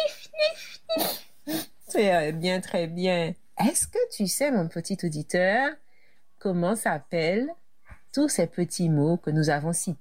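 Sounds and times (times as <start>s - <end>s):
person imitating sniffing as if about to cry: 0.9s - 1.8s
speech: 2.0s - 5.8s, 6.4s - 7.6s, 8.2s - 9.9s.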